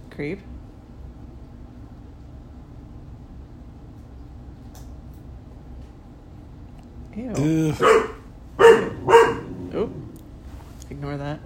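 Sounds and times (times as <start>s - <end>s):
speech: 0.2s - 0.6s, 7.2s - 8.1s
dog barking: 7.7s - 9.9s.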